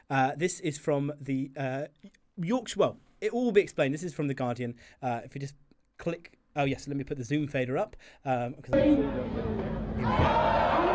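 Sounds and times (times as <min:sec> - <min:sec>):
speech: 0:00.1 - 0:10.4
crowd chatter at an outdoor throwing contest: 0:08.8 - 0:10.9.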